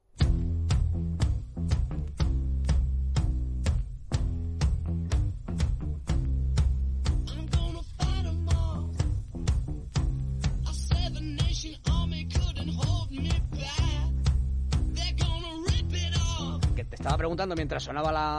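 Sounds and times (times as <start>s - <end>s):
distorted guitar: 0.0s - 18.3s
heavy driving bass riff: 0.0s - 18.3s
loud rock song played on air: 0.0s - 18.3s
raw vocal: 7.2s - 9.4s, 10.4s - 18.3s
speech: 17.2s - 18.3s.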